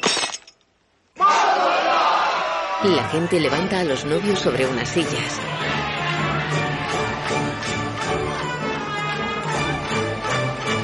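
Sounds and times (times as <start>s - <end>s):
glass laid on the floor stepped on and breaking at a wedding: 0.0s - 0.7s
wedding crowd shouting and cheering: 1.2s - 10.8s
speech: 2.8s - 6.0s.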